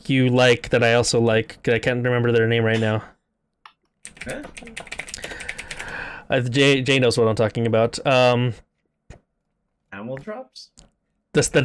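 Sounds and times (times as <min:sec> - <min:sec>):
speech: 0:00.0 - 0:03.2, 0:04.2 - 0:05.5, 0:06.3 - 0:08.6, 0:09.9 - 0:11.6
rapid typing on a computer keyboard: 0:04.0 - 0:06.1.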